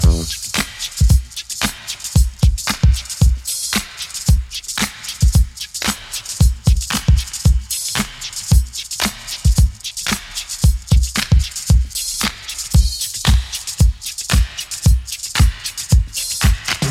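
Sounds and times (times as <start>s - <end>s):
113 bpm modern breakbeat in C key: 0.0s - 16.9s.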